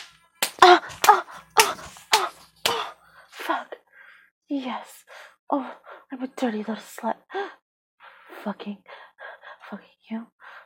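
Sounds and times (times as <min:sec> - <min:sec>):
slaps on skin: 0:00.0 - 0:02.9
speech: 0:04.6 - 0:07.4, 0:08.4 - 0:08.9, 0:09.7 - 0:10.3.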